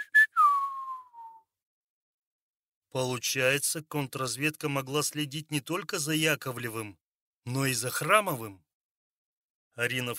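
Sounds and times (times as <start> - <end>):
person whistling: 0.0 - 1.5
speech: 2.9 - 8.6, 9.8 - 10.1.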